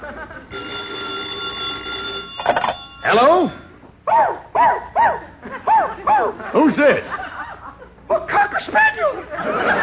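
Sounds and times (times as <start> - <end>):
laughter: 0.0 - 0.5, 5.2 - 9.8
speech: 3.1 - 3.6
cocker spaniel barking: 4.1 - 6.4.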